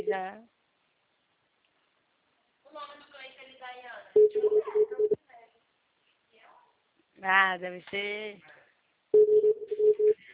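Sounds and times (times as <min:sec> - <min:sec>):
speech: 0:00.0 - 0:00.6, 0:07.2 - 0:08.5, 0:09.1 - 0:10.3
telephone ringing with a buzzing electronic tone: 0:04.2 - 0:05.2, 0:09.2 - 0:10.2.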